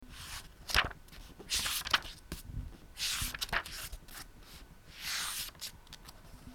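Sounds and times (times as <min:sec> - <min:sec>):
book pages turning: 0:00.2 - 0:02.2, 0:03.0 - 0:04.3, 0:05.0 - 0:06.2.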